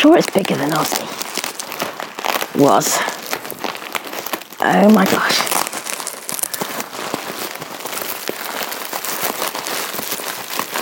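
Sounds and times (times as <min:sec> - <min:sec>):
speech: 0:00.0 - 0:01.2, 0:02.6 - 0:03.2, 0:04.6 - 0:05.5
large bubble wrap parcel crinkling while being unwrapped: 0:00.0 - 0:10.8.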